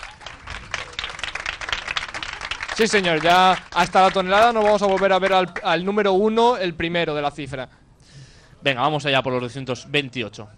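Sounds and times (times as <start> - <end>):
audience applause at a live competition event: 0.0 - 5.7
speech: 2.8 - 7.8, 8.6 - 10.5.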